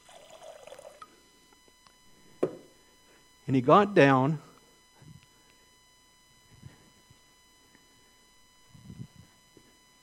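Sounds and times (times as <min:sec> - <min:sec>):
water poured from a pitcher into a bowl: 0:00.0 - 0:01.1
knock: 0:02.4 - 0:02.6
speech: 0:03.5 - 0:04.4.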